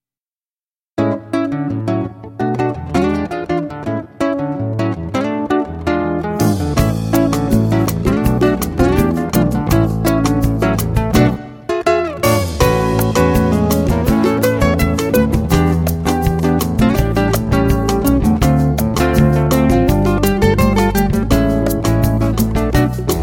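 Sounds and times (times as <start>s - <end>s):
bossa nova music: 1.0s - 23.2s.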